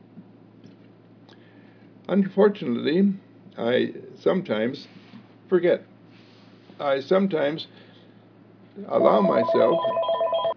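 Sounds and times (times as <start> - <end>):
speech: 2.1 - 5.9, 6.8 - 7.8, 8.8 - 10.1
telephone ringing with electronic tones: 9.0 - 10.5.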